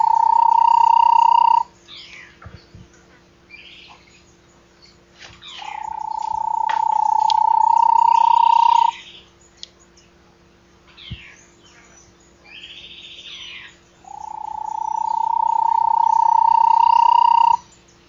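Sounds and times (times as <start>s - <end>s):
Bahia tapaculo delivering a low fast trill: 0.0s - 2.4s, 5.4s - 9.7s, 11.0s - 17.8s.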